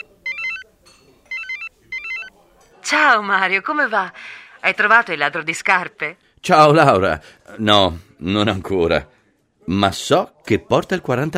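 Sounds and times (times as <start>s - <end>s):
telephone electronic ringtone of bright stepped melodic beeps: 0.0s - 0.7s, 1.3s - 2.3s
speech: 3.0s - 11.3s.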